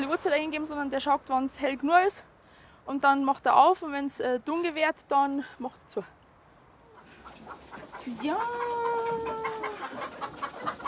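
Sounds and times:
speech: 0.2s - 6.2s, 7.5s - 10.4s
chickens clucking as they are let out onto a meadow: 6.8s - 10.8s.

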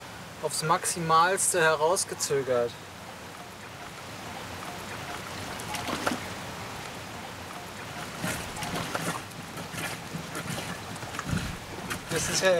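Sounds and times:
speech: 0.4s - 2.9s
water draining through small holes during prewash: 3.6s - 12.5s.

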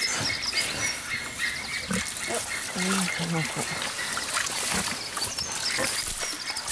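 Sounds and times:
pigs grunting and squealing: 0.1s - 6.7s
water gushing from a garden hose: 2.1s - 6.7s.

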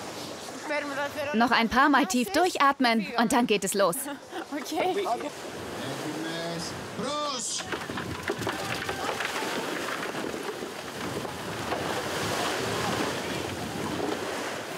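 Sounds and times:
sea waves and surf at harbour: 0.0s - 14.7s
speech: 0.7s - 5.6s
wind buffeting the microphone: 7.6s - 14.7s.

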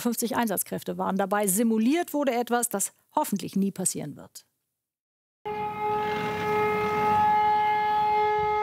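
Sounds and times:
speech: 0.0s - 4.5s
loud emergency siren wailing at airport drill: 5.5s - 8.6s.

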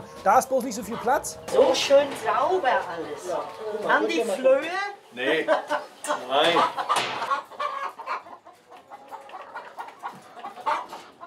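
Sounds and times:
chickens clucking in a coop: 0.0s - 11.2s
speech: 0.2s - 7.5s
chicken squawks: 5.7s - 11.2s.

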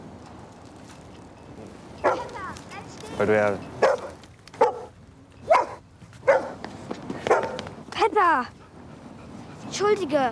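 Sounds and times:
dog barking: 2.0s - 2.4s, 3.8s - 4.9s, 5.5s - 6.6s, 7.3s - 7.6s
speech: 3.2s - 3.7s, 8.3s - 8.6s, 9.7s - 10.3s.

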